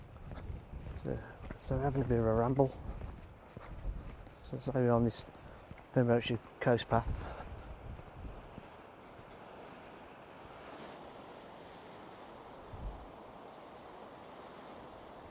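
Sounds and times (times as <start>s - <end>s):
wind buffeting the microphone: 0.0s - 13.6s
speech: 1.0s - 3.0s, 4.5s - 5.4s, 6.0s - 7.3s
ocean surf breaking along a shore: 6.4s - 15.2s.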